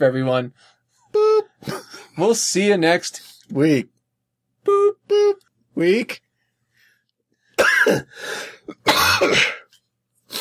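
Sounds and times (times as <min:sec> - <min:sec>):
speech: 0:00.0 - 0:04.0, 0:04.6 - 0:06.2, 0:07.8 - 0:09.6
person coughing hard: 0:07.6 - 0:09.8.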